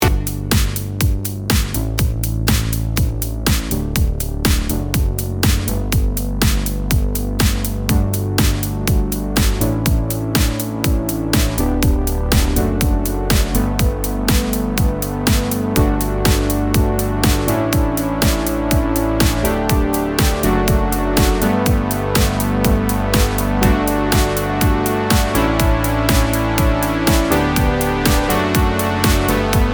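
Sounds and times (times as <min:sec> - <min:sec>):
warm poly synth: 0:00.0 - 0:29.7.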